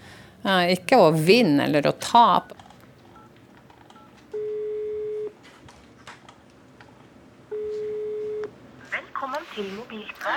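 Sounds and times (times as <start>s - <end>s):
speech: 0.4s - 2.6s
telephone ringback tone ringing unanswered: 4.0s - 5.4s, 7.5s - 8.5s.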